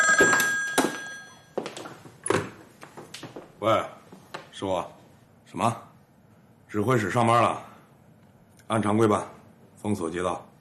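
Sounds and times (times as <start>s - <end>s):
telephone bell ringing in an office: 0.0s - 1.8s
speech: 3.6s - 4.0s, 4.6s - 5.9s, 6.7s - 7.7s, 8.7s - 10.5s.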